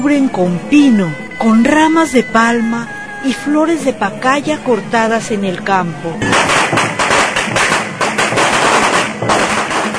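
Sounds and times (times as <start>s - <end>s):
speech: 0.0s - 7.0s
firecrackers bursting in loud cracks and pops: 6.2s - 9.9s.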